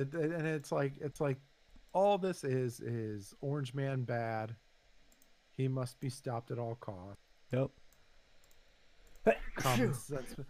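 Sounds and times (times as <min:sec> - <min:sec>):
speech: 0:00.0 - 0:04.6, 0:05.6 - 0:07.8, 0:09.2 - 0:10.4
person sneezing: 0:09.3 - 0:10.4.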